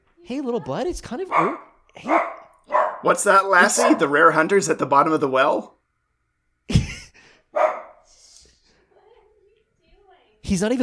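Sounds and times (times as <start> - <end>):
speech: 0.2 - 2.4, 3.0 - 5.8, 10.5 - 10.8
dog barking: 1.3 - 4.2, 7.5 - 8.0.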